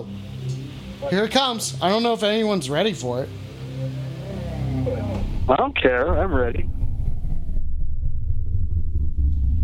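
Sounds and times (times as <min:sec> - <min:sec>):
speech: 0:01.0 - 0:04.0, 0:05.5 - 0:06.8
very deep sustained rumbling note on electronic keyboard: 0:04.8 - 0:09.6.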